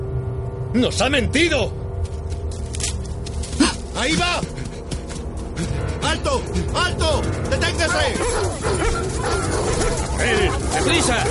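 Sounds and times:
steady noisy background: 0.0 - 11.3
speech: 0.7 - 2.2, 4.0 - 4.6, 5.6 - 11.3
several dogs barking and yipping: 7.1 - 11.3
dogs whimpering excitedly: 7.8 - 11.3.

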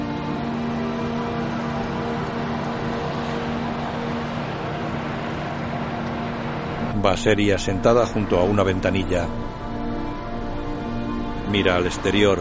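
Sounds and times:
bus engine rumble on a road lined with tall pine trees: 0.0 - 12.3
road roar: 0.0 - 12.3
speech: 7.0 - 9.6, 11.5 - 12.3.

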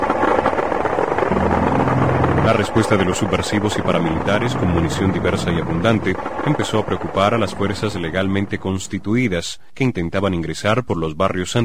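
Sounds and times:
helicopter rotor flying overhead: 0.0 - 9.2
speech: 2.5 - 11.6.

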